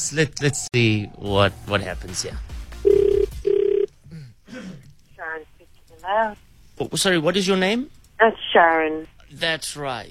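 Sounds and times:
speech: 0.1 - 2.6, 6.0 - 10.0
ringback tones through a company phone line on an outgoing call: 2.8 - 3.9.

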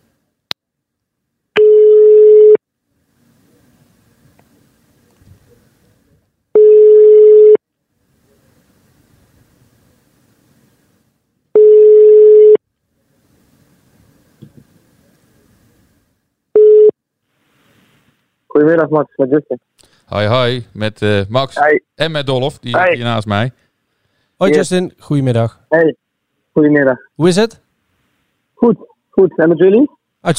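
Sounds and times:
ringing tone of an outgoing telephone call: 1.6 - 2.6, 6.6 - 7.6, 11.6 - 12.6, 16.6 - 17.0
speech: 18.6 - 23.6, 24.4 - 26.0, 26.6 - 27.6, 28.6 - 30.3.

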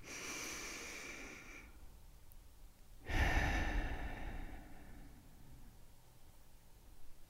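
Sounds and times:
deep breath in and out: 0.0 - 1.8, 3.0 - 5.8.

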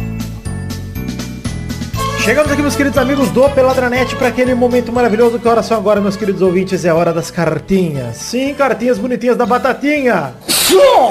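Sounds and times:
speech: 2.3 - 11.0
sneeze: 10.4 - 11.0.

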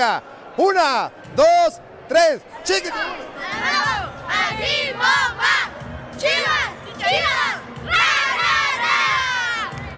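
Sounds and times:
speech: 0.0 - 8.2
group shouting a rhythmic football team cheer chant in unison: 2.9 - 9.8.

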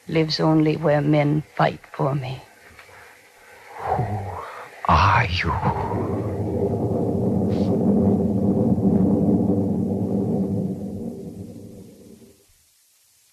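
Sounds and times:
speech: 0.1 - 2.5, 4.9 - 6.2
loud deep rumble of thunder with crackle: 3.8 - 12.4.

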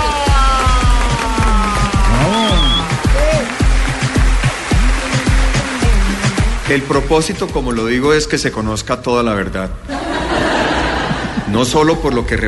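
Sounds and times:
crowd cheering: 0.0 - 6.5
loud sustained applause from a crowd welcoming a guest: 0.0 - 7.3
whistles from a crowd: 2.1 - 3.4
speech: 6.7 - 10.2, 11.5 - 12.4
laughter: 9.9 - 12.4.

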